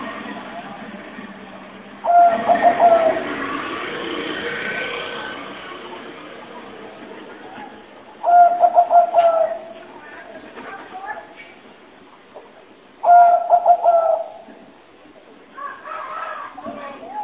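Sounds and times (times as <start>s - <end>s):
spotted dove cooing as a lure call for trapping: 2.0s - 4.2s, 8.2s - 9.8s, 13.0s - 14.6s.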